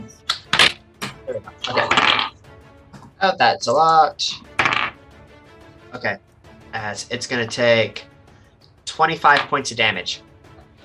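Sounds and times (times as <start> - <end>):
speech: 1.3 - 2.3, 3.2 - 4.5, 5.9 - 8.1, 9.0 - 10.3
dice clattering across a tabletop: 4.6 - 5.0, 9.3 - 9.5.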